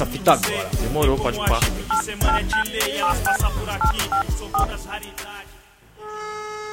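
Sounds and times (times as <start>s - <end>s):
speech: 0.2s - 5.5s
telephone keypad tones dialling a call: 1.9s - 4.7s.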